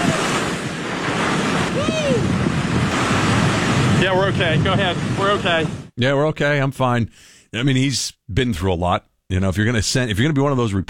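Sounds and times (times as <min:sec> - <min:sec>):
heavy ocean surf roaring: 0:00.0 - 0:05.9
strong wind buffeting the microphone: 0:00.0 - 0:06.0
speech: 0:04.1 - 0:10.8.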